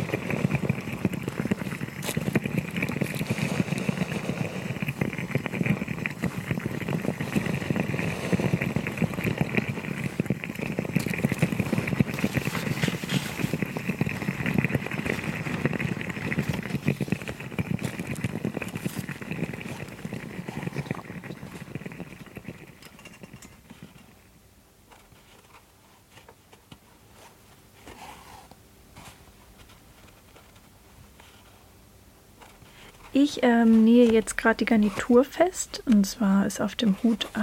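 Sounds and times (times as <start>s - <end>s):
small quick steamer hissing and bubbling as it puts out steam: 0.0s - 24.3s, 32.6s - 37.4s
speech: 33.2s - 37.4s.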